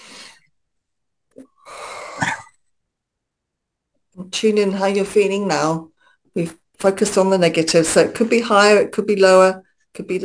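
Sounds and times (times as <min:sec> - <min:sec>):
deep breath drawn and let out: 0:00.0 - 0:00.5, 0:01.5 - 0:02.3
speech: 0:04.3 - 0:10.2.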